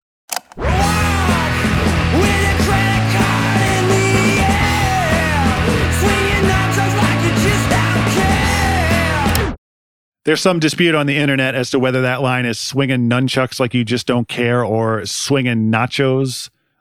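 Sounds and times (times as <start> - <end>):
crashing distorted guitars: 0.6 - 9.6
raw screamed indie rock vocals: 0.6 - 9.6
steady bass: 0.6 - 9.6
pounding drums: 0.8 - 9.4
speech: 10.3 - 16.6.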